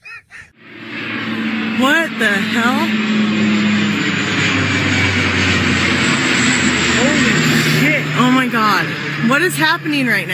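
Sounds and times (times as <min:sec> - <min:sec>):
Alaska Airlines Q400 turboprop airliner flying low overhead: 0:00.0 - 0:10.3
speech: 0:01.8 - 0:03.2, 0:09.2 - 0:10.3.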